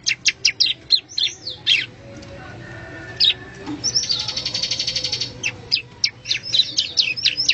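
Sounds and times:
bar-winged prinia song: 0:00.0 - 0:07.5.

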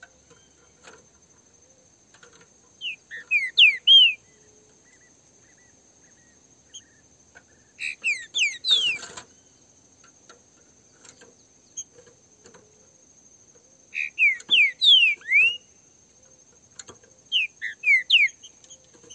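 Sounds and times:
green-winged saltator pair in song dispute: 0:02.8 - 0:04.2, 0:07.8 - 0:09.1, 0:14.0 - 0:15.7, 0:17.3 - 0:18.4.

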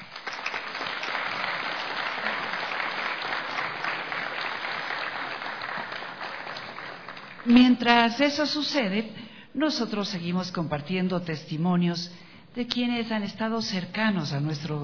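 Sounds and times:
crowd applauding at a ribbon-cutting ceremony opening radio station facilities: 0:00.0 - 0:07.5
speech: 0:07.4 - 0:14.8.

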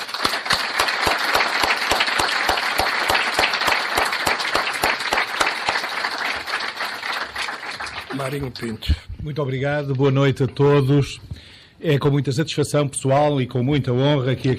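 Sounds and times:
audience applause at a club talk: 0:00.0 - 0:08.8
speech: 0:08.2 - 0:14.5.

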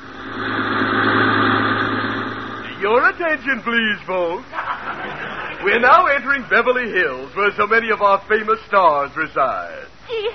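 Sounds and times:
sightseeing bus engine running on a city tour: 0:00.0 - 0:03.5
speech: 0:02.9 - 0:04.6, 0:05.6 - 0:10.3
laughter: 0:04.5 - 0:06.1.

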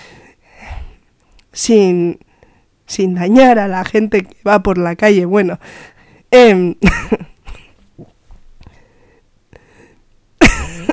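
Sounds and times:
faint breathy sounds: 0:00.0 - 0:01.4, 0:02.2 - 0:02.8, 0:05.6 - 0:06.3, 0:08.6 - 0:10.1
speech: 0:01.6 - 0:02.3, 0:02.9 - 0:07.3
person coughing nervously: 0:06.8 - 0:07.8, 0:10.4 - 0:10.9.

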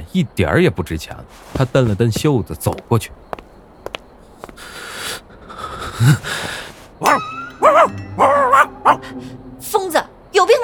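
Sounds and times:
speech: 0:00.2 - 0:03.3, 0:06.0 - 0:10.6
small dog barking at a man: 0:07.0 - 0:09.1.

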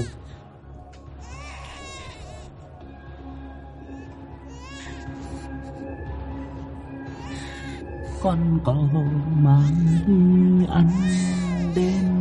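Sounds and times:
small child crying: 0:01.2 - 0:02.5, 0:04.5 - 0:05.0, 0:10.9 - 0:12.1
speech: 0:08.2 - 0:12.0.

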